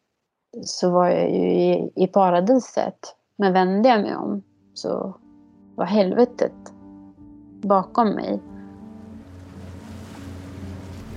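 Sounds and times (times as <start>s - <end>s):
speech: 0.6s - 5.2s, 5.8s - 6.8s, 7.6s - 8.5s
boat engine droning at sea: 8.4s - 11.1s
constant wash of sea water: 8.9s - 11.1s.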